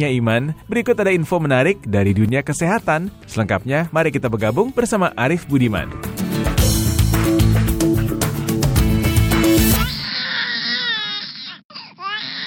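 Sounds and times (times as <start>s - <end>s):
speech: 0.0s - 6.5s
upbeat music: 0.0s - 10.0s
infant wailing: 9.4s - 12.4s.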